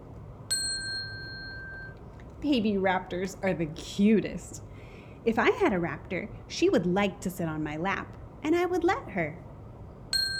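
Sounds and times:
soft low hum: 0:00.0 - 0:10.3
small bell ringing: 0:00.5 - 0:02.0, 0:10.1 - 0:10.3
speech: 0:02.4 - 0:09.5.

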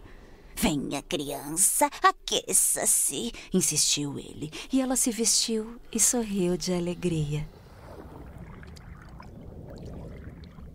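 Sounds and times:
speech: 0:00.6 - 0:07.6
boat moving through deep dark water: 0:07.4 - 0:10.7
small splashes and drips: 0:07.7 - 0:10.7.

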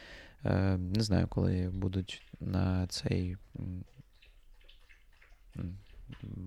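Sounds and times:
speech: 0:00.4 - 0:04.0, 0:05.6 - 0:06.4
dog lapping water from a bowl: 0:01.7 - 0:06.4.

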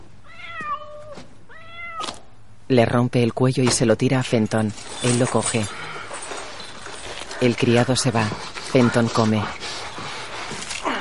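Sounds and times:
cat meowing: 0:00.2 - 0:02.2
speech: 0:02.7 - 0:05.8, 0:07.4 - 0:09.8.

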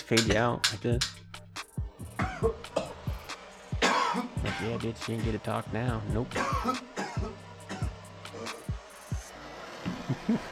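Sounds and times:
speech: 0:00.1 - 0:01.2, 0:02.4 - 0:02.7, 0:04.6 - 0:07.4, 0:10.3 - 0:10.5
steady low thumping pulse: 0:00.2 - 0:09.3
harsh raspy coughs and throat-clearing: 0:02.0 - 0:05.2, 0:06.1 - 0:08.7
laughter: 0:09.8 - 0:10.5.

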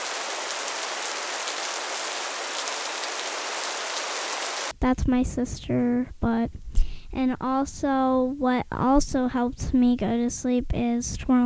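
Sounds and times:
steady continuous rain of fine droplets hissing: 0:00.0 - 0:04.7
speech: 0:04.8 - 0:11.4.

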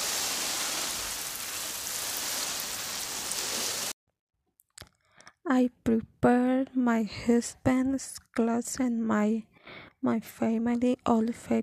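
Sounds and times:
shower water spraying: 0:00.0 - 0:04.0
speech: 0:05.5 - 0:11.6.

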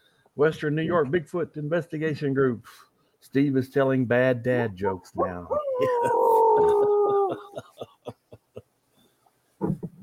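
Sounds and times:
speech: 0:00.4 - 0:06.8
wolf howl made with a handheld wolf call: 0:05.5 - 0:07.5
laughter: 0:05.6 - 0:08.6.

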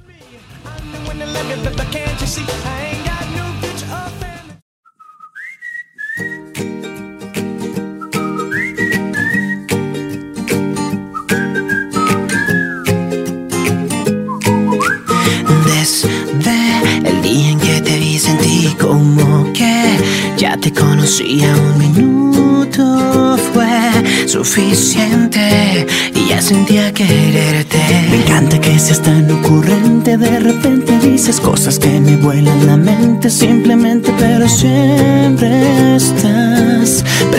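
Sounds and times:
Spanish-language pop song with full band backing: 0:00.0 - 0:04.6, 0:14.5 - 0:37.3
bright whistled melody: 0:04.8 - 0:10.0, 0:10.8 - 0:13.2, 0:13.9 - 0:16.8
speech: 0:24.3 - 0:27.7, 0:28.8 - 0:37.3.

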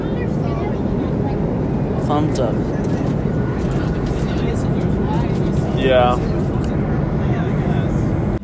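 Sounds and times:
airplane cabin drone of deep engine rumble in flight: 0:00.0 - 0:08.4
speech: 0:02.1 - 0:02.8, 0:05.8 - 0:06.4.

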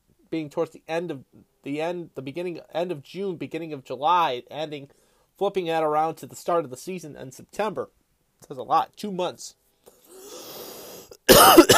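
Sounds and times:
speech: 0:00.3 - 0:09.6, 0:11.3 - 0:11.7
person coughing wheezily: 0:11.2 - 0:11.7.

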